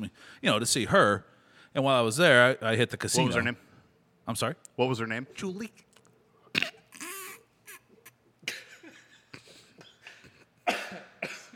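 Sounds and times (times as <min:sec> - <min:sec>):
speech: 0:00.0 - 0:03.7, 0:04.3 - 0:05.9
man coughing from choking on popcorn kernels: 0:08.4 - 0:11.5.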